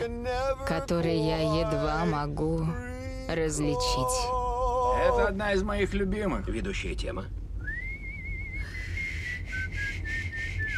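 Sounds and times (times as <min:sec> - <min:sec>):
speech: 0:00.0 - 0:04.4, 0:05.0 - 0:07.4
person attempting to whistle: 0:07.6 - 0:10.7.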